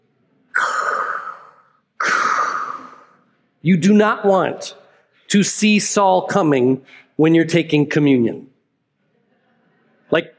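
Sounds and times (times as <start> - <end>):
voice mimicking heavy mechanical respirator breathing: 0.6 - 3.2
speech: 3.6 - 8.5, 10.1 - 10.3.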